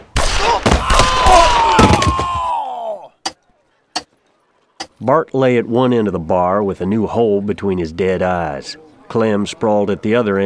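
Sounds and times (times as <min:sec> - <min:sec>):
pistol gunshots during a target-shooting contest: 0:00.0 - 0:02.1
speech: 0:05.0 - 0:10.4.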